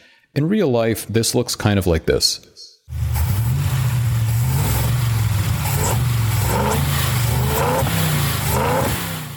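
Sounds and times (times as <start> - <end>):
speech: 0.3 - 2.6
car engine revving as throttle opens: 2.9 - 9.3.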